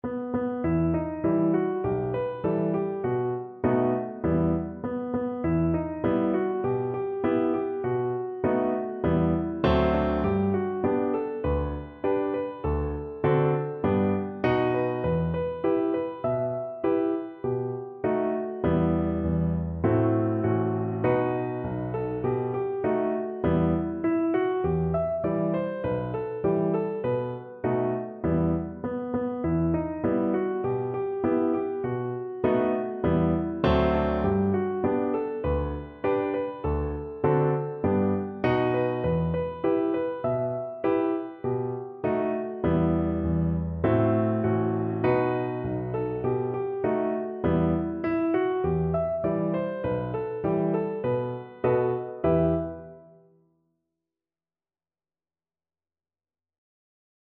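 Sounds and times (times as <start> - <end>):
piano: 0.0 - 53.6.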